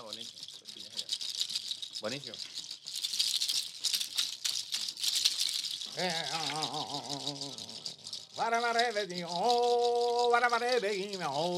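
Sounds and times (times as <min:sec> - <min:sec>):
llama hoof rattle shaken: 0:00.0 - 0:11.5
speech: 0:02.0 - 0:02.5, 0:06.0 - 0:07.8, 0:08.4 - 0:11.5
wavering sustained voice: 0:05.9 - 0:11.5.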